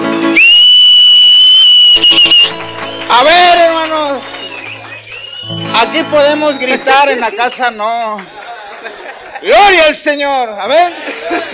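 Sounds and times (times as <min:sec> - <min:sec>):
people whistling loudly at a church gathering: 0:00.4 - 0:08.7
speech: 0:05.9 - 0:08.4, 0:09.4 - 0:11.5
laughter: 0:06.3 - 0:11.5.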